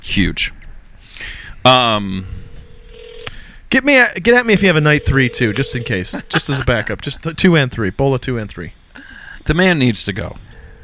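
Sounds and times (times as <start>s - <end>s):
speech: 0.1s - 0.6s, 1.2s - 2.4s, 3.7s - 10.5s
loud buzzy electronic phone tone from a call placed on speakerphone: 2.3s - 3.3s, 4.6s - 6.4s
laughter: 6.0s - 7.1s.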